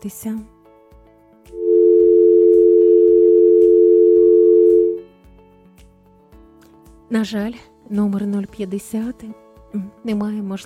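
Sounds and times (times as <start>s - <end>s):
speech: 0.0s - 0.6s, 7.1s - 10.6s
telephone line tone after caller hung up: 1.6s - 5.0s.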